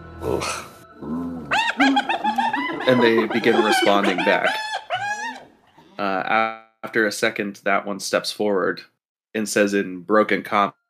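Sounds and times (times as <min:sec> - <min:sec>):
speech: 0:00.2 - 0:01.2, 0:02.9 - 0:04.7, 0:06.0 - 0:10.8
human voice imitating a gnoll growling, yipping and cackling: 0:00.3 - 0:05.5.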